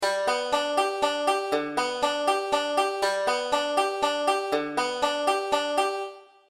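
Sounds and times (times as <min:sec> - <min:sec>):
five-string banjo playing a three four roll: 0:00.0 - 0:06.2.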